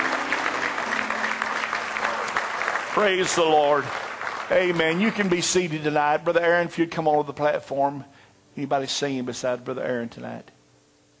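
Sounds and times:
church congregation clapping hands in praise during a worship service: 0.0 - 6.1
speech: 3.0 - 10.6.

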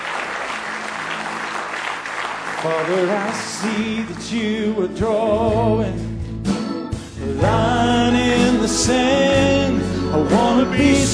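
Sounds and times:
church congregation clapping hands in praise during a worship service: 0.0 - 4.6
speech: 2.6 - 6.3, 7.4 - 11.1.

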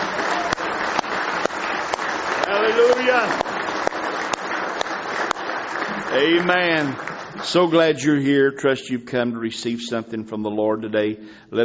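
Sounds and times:
church congregation clapping in praise: 0.0 - 8.6
speech: 2.5 - 3.4, 6.1 - 11.6.

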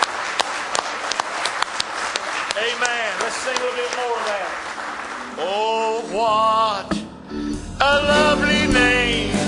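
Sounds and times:
church congregation clapping hands in praise during a worship service: 0.0 - 6.0
loud dense crowd noise: 0.0 - 7.3
speech: 2.6 - 9.3.

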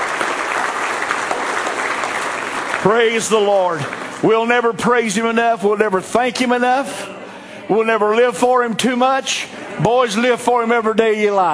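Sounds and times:
audience applause at a worship service: 0.0 - 4.3
speech: 2.8 - 11.5.

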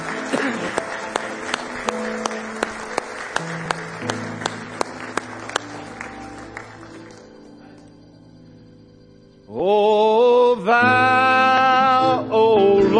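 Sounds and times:
audience clapping in praise: 0.0 - 8.1
organ or keyboard tones: 0.0 - 12.9.

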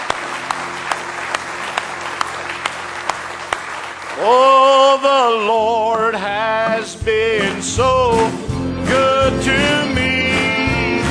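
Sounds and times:
church audience clapping at an evening service: 0.0 - 5.4
speech: 4.2 - 10.2.

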